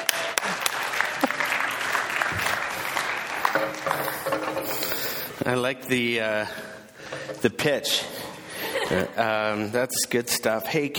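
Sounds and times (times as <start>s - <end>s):
crowd applauding: 0.0s - 4.8s
speech: 3.6s - 4.5s, 5.5s - 8.3s, 8.9s - 10.9s.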